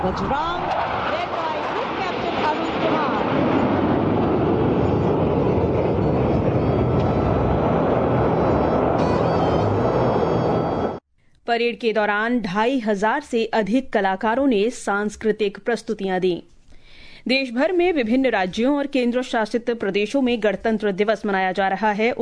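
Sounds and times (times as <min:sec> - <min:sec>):
speech: 0:00.0 - 0:00.8, 0:02.4 - 0:03.6, 0:11.5 - 0:16.5, 0:17.2 - 0:22.2
military jet aircraft roaring past overhead: 0:00.0 - 0:11.0.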